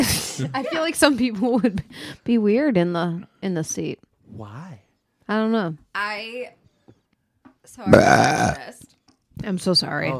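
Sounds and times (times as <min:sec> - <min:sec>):
speech: 0:00.0 - 0:06.6, 0:07.7 - 0:10.1
loud burp: 0:07.9 - 0:08.7.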